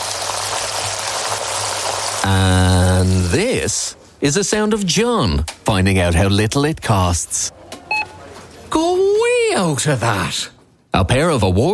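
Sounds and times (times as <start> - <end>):
pair of 32-day matured sirloin steaks sizzling in pure Irish butter: 0.0 - 3.3
speech: 2.2 - 7.6, 9.6 - 11.7.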